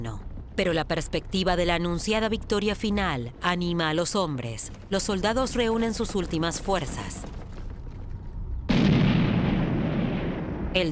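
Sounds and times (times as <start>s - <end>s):
low rumble: 0.0s - 10.8s
speech: 0.6s - 7.3s
wartime artillery barrage against Soviet positions: 8.7s - 10.8s.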